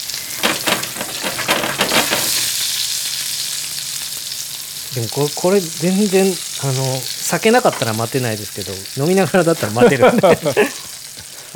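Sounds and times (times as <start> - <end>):
stuffed olives with raw meat filling shallow-frying in oil in a pan: 0.0 - 11.5
speech: 5.0 - 10.8
laughter: 9.2 - 11.5.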